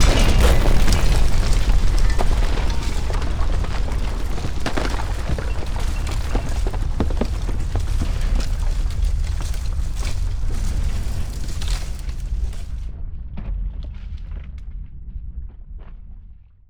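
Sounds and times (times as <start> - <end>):
explosion impact: 0.0 - 11.1
mixed falling rubble: 0.0 - 12.9.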